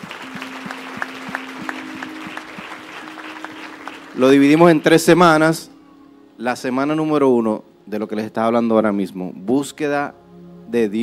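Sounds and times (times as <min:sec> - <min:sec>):
congregation applauding with rhythmic clapping: 0:00.0 - 0:05.2
low sustained musical tone: 0:00.0 - 0:11.0
speech: 0:04.2 - 0:05.7, 0:06.4 - 0:11.0.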